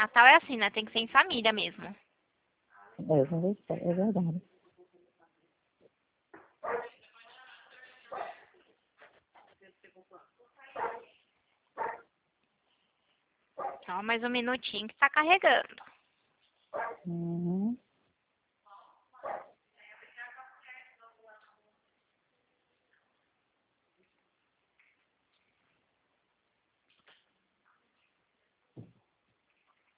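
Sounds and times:
speech: 0.0 - 2.1, 3.0 - 4.5, 13.9 - 15.9, 16.7 - 17.8
murmured voices: 3.0 - 4.4
dog barking: 6.6 - 7.0, 8.1 - 8.5, 10.8 - 11.1, 11.8 - 12.1, 13.6 - 13.9, 16.7 - 17.1, 19.2 - 19.6.

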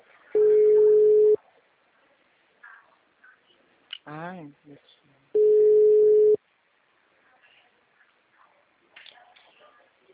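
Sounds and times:
telephone ringback tone while placing a call: 0.4 - 1.4, 5.4 - 6.4
speech: 4.1 - 5.4.

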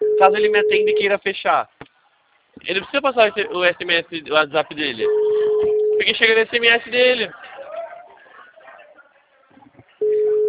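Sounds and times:
mobile phone call ringing tone, unanswered: 0.0 - 1.0, 5.0 - 6.2, 10.0 - 10.4
speech: 0.2 - 1.8, 2.6 - 5.4, 6.0 - 7.4
faint murmuring: 1.9 - 10.4.

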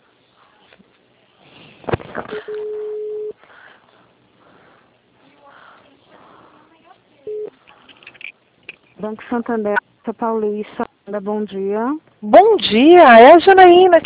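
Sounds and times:
telephone tones from an outgoing call being placed: 2.3 - 3.4, 7.3 - 7.6
speech: 9.0 - 14.0.

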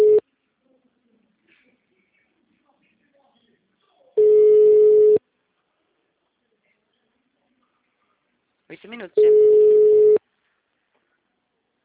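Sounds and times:
ringback tone of an outgoing phone call to a bank line: 0.0 - 0.2, 4.2 - 5.2, 9.2 - 10.2
speech: 8.9 - 9.5.

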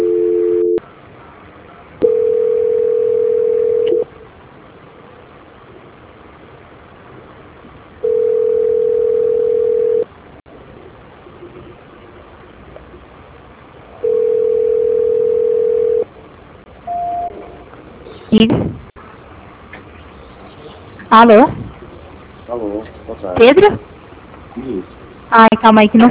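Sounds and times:
telephone line tones during a call transfer: 0.0 - 0.8, 2.0 - 4.0, 8.0 - 10.0, 14.0 - 16.0, 16.9 - 17.4
speech: 21.1 - 21.6, 22.6 - 23.8, 24.6 - 26.0.

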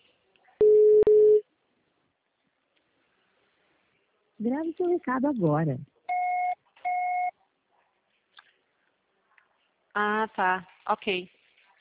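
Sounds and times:
telephone line tone while placing a call: 0.6 - 1.4, 6.1 - 7.3
speech: 4.4 - 5.9, 10.0 - 11.4.

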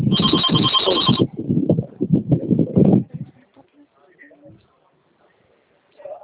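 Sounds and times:
telephone ringing with a bright electronic trill: 0.0 - 1.3
people talking: 0.1 - 6.2.

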